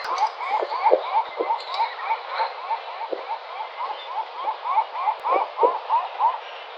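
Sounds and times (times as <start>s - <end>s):
Larus livens calling: 0.0s - 6.6s.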